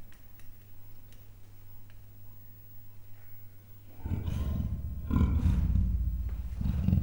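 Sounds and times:
captive male and female leopards growling at a zoo in Miskolc: 0:03.9 - 0:07.0
low hum: 0:04.0 - 0:07.0.

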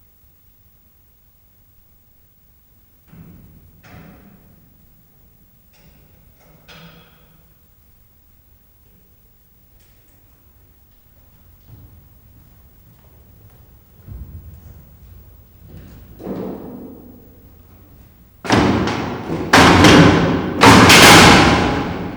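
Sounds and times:
metal grating being opened at Miskolc zoo: 0:18.5 - 0:22.1.

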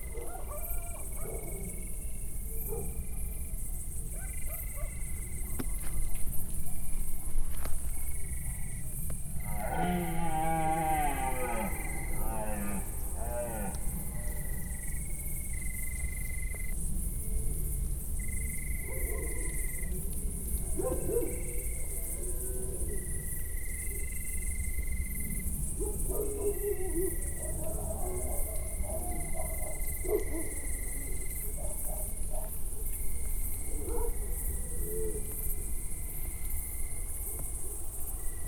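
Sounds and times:
cricket in nature: 0:00.0 - 0:38.4
hunter's horn in nature: 0:09.4 - 0:14.1
red deer in nature: 0:09.4 - 0:14.6.

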